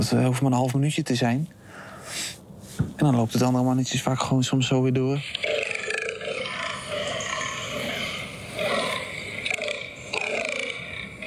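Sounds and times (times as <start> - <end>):
speech: 0.0 - 2.2, 3.0 - 5.6
steady hiss: 1.5 - 11.2
fallow deer rutting groans played back from a smartphone recording: 5.2 - 11.2.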